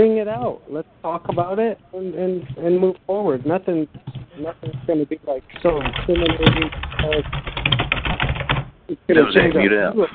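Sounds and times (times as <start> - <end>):
speech: 0.0 - 8.2, 8.9 - 10.1
computer keyboard typing: 3.9 - 8.7.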